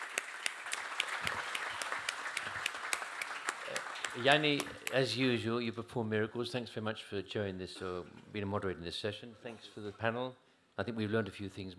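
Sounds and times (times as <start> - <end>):
audience applauding a panel at a session: 0.0 - 5.2
speech: 4.2 - 11.7.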